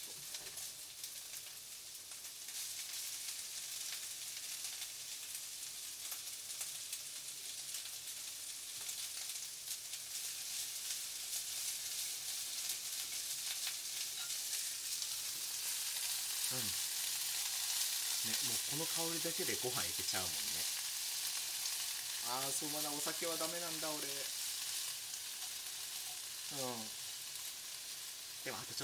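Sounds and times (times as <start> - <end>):
food stir-fried in a pan sizzling and crackling: 0.0 - 28.8
speech: 18.3 - 20.7, 22.3 - 24.4, 26.5 - 26.9.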